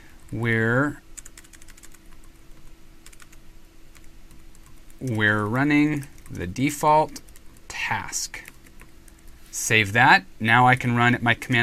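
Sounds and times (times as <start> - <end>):
speech: 0.3 - 1.0, 5.0 - 7.3, 7.9 - 8.5, 9.6 - 11.6
computer keyboard typing code: 1.2 - 9.4.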